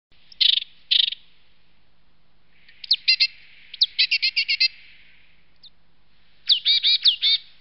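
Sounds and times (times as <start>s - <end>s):
great tit calling: 2.6s - 5.8s, 6.5s - 7.5s.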